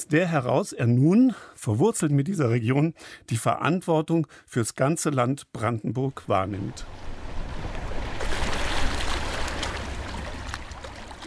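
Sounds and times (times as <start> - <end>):
speech: 0.0 - 7.1
river water gently babbling: 6.2 - 11.2.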